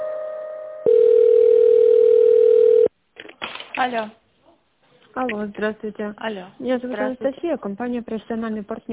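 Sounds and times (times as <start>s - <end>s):
telephone tones while a call is transferred between office departments: 0.8s - 2.9s
speech: 3.8s - 4.2s, 5.2s - 8.9s.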